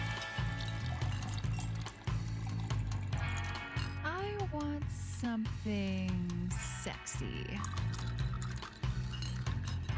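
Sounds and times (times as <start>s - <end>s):
pool filter pumping water splashing back into a pool: 0.2s - 3.9s, 7.6s - 9.8s
speech: 5.2s - 8.1s.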